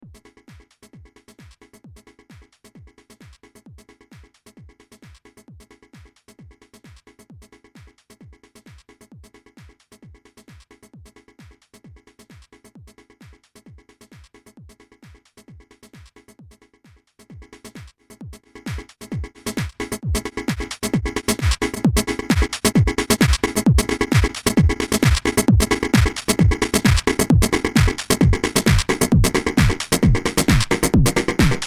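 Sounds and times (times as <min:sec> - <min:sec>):
drum loop: 0:00.0 - 0:31.6.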